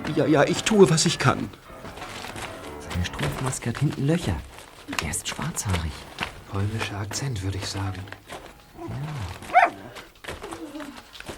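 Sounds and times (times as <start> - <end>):
speech: 0.1 - 2.0, 3.0 - 8.3
dog growling low and rumbling: 8.8 - 11.0
single sharp loud dog bark: 9.5 - 10.0.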